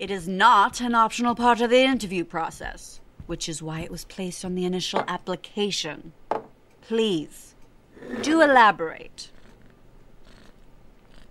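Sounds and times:
speech: 0:00.0 - 0:09.3
little cat purring: 0:09.2 - 0:11.2.

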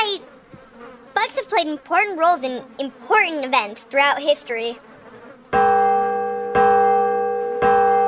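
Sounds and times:
speech: 0:01.4 - 0:04.9
large bell tolling: 0:05.6 - 0:08.0.

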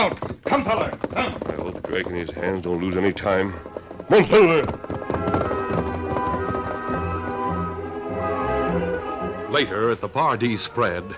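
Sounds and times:
horse hooves galloping: 0:00.0 - 0:11.1
speech: 0:00.1 - 0:05.5, 0:09.5 - 0:11.1
music playing: 0:02.8 - 0:11.1.

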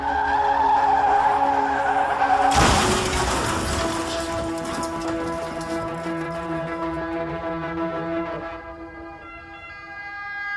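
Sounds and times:
car tire squeal while skidding: 0:00.0 - 0:10.4
car crash: 0:01.8 - 0:09.6
lingering metallic ringing and debris noise: 0:02.5 - 0:06.6.

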